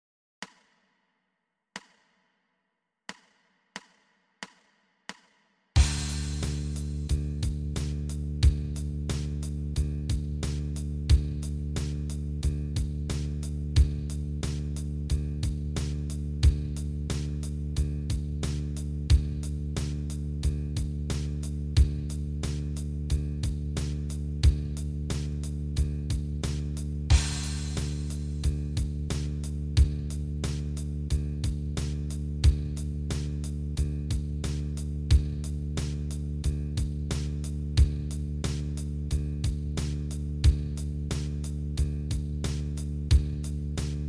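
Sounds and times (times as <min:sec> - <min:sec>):
bass open D: 0:05.8 - 0:44.0.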